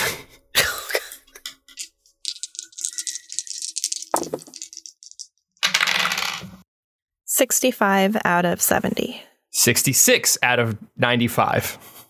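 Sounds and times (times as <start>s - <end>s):
person coughing or clearing throat: 0.6s - 1.3s
several dice clattering across a hard tabletop: 1.7s - 6.6s
speech: 7.4s - 11.9s.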